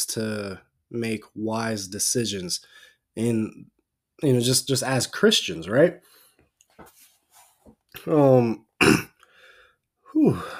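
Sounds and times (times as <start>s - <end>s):
speech: 0.0s - 6.1s, 8.0s - 9.1s, 10.2s - 10.5s
gravelly throat clearing: 8.8s - 9.2s
harsh cough: 8.8s - 9.2s
faint breath: 9.2s - 10.5s.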